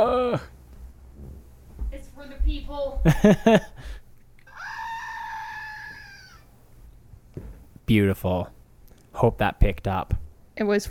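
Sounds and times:
speech: 0:00.0 - 0:00.5, 0:02.8 - 0:03.9, 0:07.9 - 0:08.6, 0:09.2 - 0:10.9
small screaming goat toy statuette electronic scream: 0:04.5 - 0:06.5.

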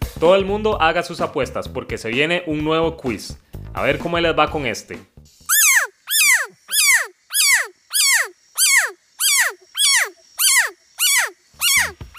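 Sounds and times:
speech: 0:00.2 - 0:05.1
Leptodactylus pentadactylus frog whooping call: 0:05.5 - 0:12.1.

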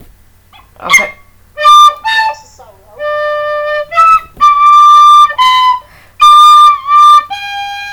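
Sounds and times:
speech: 0:00.8 - 0:01.2
person whistling a nursery-rhyme melody: 0:03.0 - 0:07.9.

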